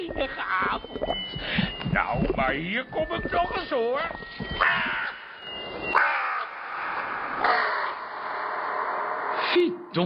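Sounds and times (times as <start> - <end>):
speech: 0.1 - 5.1, 9.5 - 10.0
crow cawing: 4.6 - 5.4, 6.0 - 9.6.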